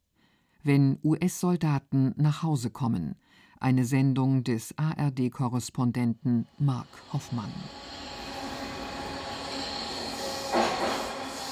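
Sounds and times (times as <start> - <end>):
speech: 0.6 - 7.9
hissing surge: 6.2 - 11.5
subway metro train running: 6.5 - 11.5.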